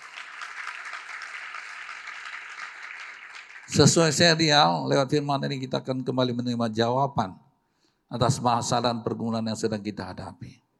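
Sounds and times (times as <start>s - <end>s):
crowd applauding: 0.0s - 4.4s
speech: 3.7s - 7.4s, 8.1s - 10.6s.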